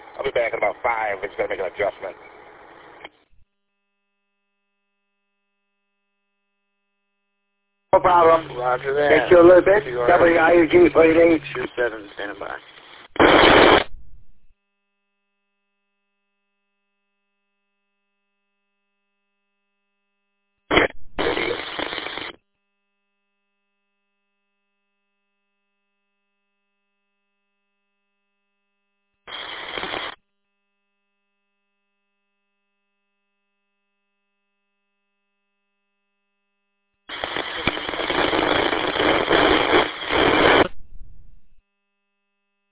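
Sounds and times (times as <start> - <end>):
two-way radio static bursts from a keyed-up transmitter: 0.0 - 3.1, 8.0 - 14.5, 20.7 - 22.4, 29.3 - 30.2, 37.1 - 41.6
speech: 0.2 - 2.3, 8.0 - 13.7.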